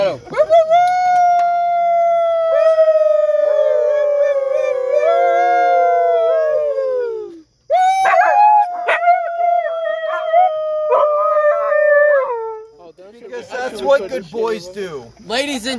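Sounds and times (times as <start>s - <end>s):
speech: 0.0s - 0.4s, 14.0s - 15.7s
dog howling: 0.3s - 12.6s.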